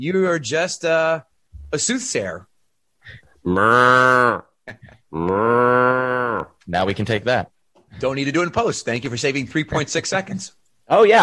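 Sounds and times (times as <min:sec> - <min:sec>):
speech: 0:00.0 - 0:02.5, 0:03.1 - 0:11.2
person imitating a cow mooing: 0:03.4 - 0:04.5, 0:05.1 - 0:06.6.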